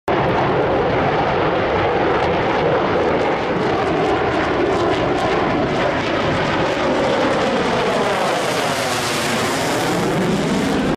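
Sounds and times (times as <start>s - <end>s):
Chengdu J 20 Chinese fighter jet: 0.1s - 10.9s.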